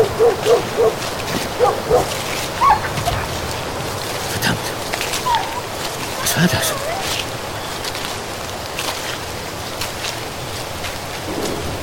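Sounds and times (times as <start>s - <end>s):
small dog yapping and barking: 0.0s - 3.4s, 5.1s - 7.3s
rushing noise: 0.0s - 11.8s.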